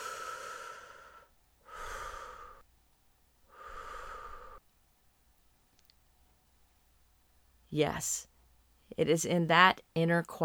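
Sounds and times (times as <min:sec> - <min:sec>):
deep breathing, inhaling and exhaling: 0:00.0 - 0:02.7, 0:03.5 - 0:04.7
speech: 0:07.7 - 0:08.3, 0:09.0 - 0:10.4.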